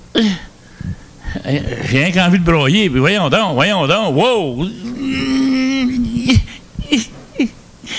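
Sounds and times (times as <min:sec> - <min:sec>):
speech: 0:01.4 - 0:05.3
person crying with joy: 0:04.4 - 0:07.9
drawn-out whimpering wail breaking into catching sobs and gasps: 0:04.6 - 0:07.6.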